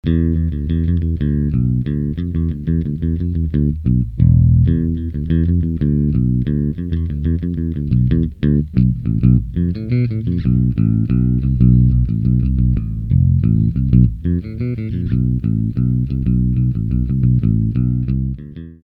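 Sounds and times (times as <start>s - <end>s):
six-string bass guitar: 0.0s - 18.8s.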